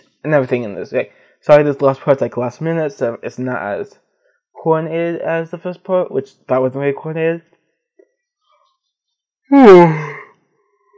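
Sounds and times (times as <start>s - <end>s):
speech: 0.2s - 4.0s, 4.6s - 7.5s, 9.5s - 10.2s
person yawning: 9.5s - 10.4s.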